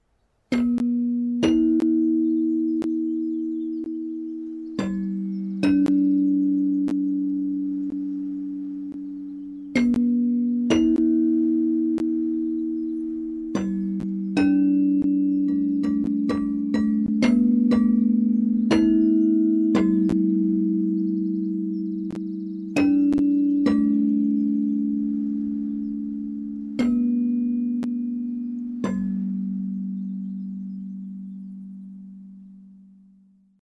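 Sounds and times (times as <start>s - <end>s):
echoing piano: 0.6s - 32.5s.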